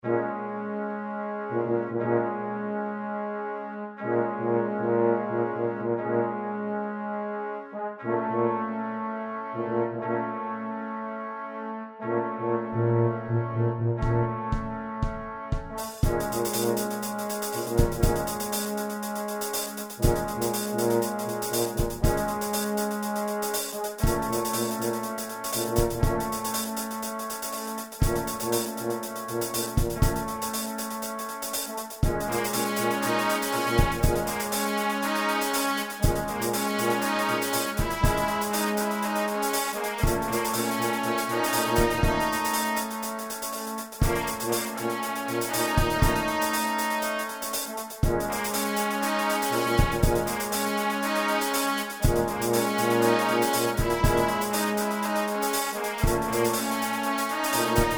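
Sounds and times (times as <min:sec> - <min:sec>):
trombone: 0:00.0 - 0:57.9
trumpet: 0:00.0 - 0:57.9
tuba: 0:00.0 - 0:57.9
drum kit: 0:14.0 - 0:57.9.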